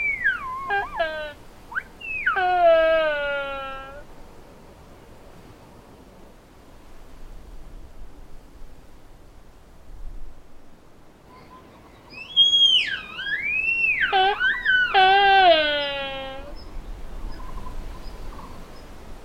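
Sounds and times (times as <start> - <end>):
Sika deer rutting calls during the rut: 0.0 - 3.4, 11.4 - 16.6.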